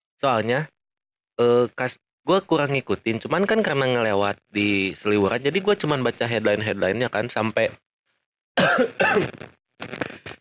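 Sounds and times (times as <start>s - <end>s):
speech: 0.2s - 0.8s, 1.4s - 7.8s, 8.6s - 10.2s
person coughing: 8.6s - 9.4s.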